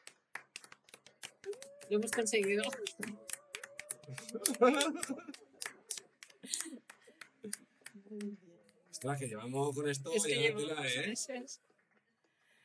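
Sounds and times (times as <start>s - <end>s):
online meeting participants clapping: 0.0s - 8.4s
speech: 1.9s - 3.2s, 4.1s - 5.4s, 8.1s - 8.4s, 9.0s - 11.7s
laughter: 4.2s - 5.6s.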